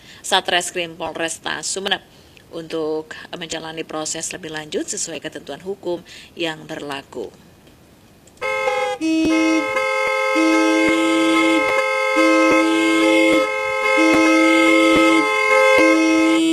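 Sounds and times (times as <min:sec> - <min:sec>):
speech: 0:00.3 - 0:07.5, 0:09.0 - 0:10.7
car horn blaring: 0:08.4 - 0:16.5.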